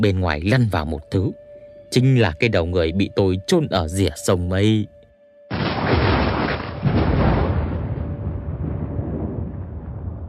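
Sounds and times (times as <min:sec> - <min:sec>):
speech: 0:00.0 - 0:05.0
thunder rumbling outside during a storm: 0:05.5 - 0:10.2.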